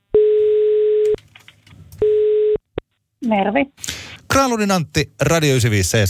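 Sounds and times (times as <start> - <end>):
telephone ringback tone while a call is placed: 0.2 - 1.1, 2.0 - 2.6
faint clicks: 1.0 - 2.0
speech: 3.3 - 6.0.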